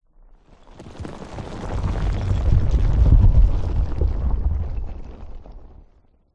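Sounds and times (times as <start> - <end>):
rock landslide of boulders with heavy low frequency rumble: 0.9 - 5.8.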